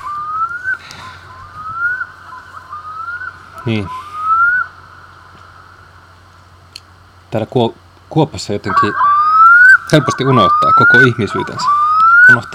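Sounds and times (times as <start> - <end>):
black-throated loon wailing call: 0.0 - 6.0, 8.6 - 12.5
quiet outdoor ambience: 0.0 - 12.5
speech: 3.6 - 4.0, 7.3 - 9.1, 9.9 - 12.5.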